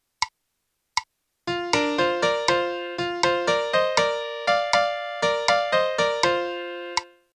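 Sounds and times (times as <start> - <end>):
melody: 1.5 - 7.2.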